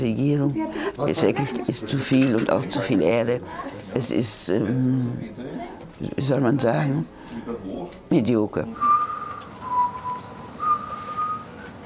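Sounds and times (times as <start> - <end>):
speech: 0.0 - 9.0
person whistling a slow church hymn melody: 8.8 - 11.7.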